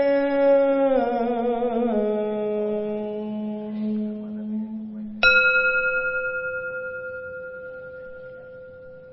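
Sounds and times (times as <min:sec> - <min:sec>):
single voice chanting in long sustained notes: 0:00.0 - 0:09.1
meditation bell being struck: 0:05.2 - 0:09.1.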